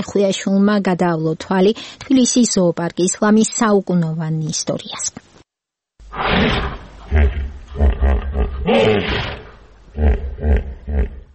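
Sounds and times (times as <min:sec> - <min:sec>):
speech: 0:00.0 - 0:05.3, 0:06.2 - 0:07.9, 0:08.7 - 0:09.3, 0:10.0 - 0:11.2
16-year-old hippopotamus roaring grunts at a zoo: 0:06.1 - 0:11.3.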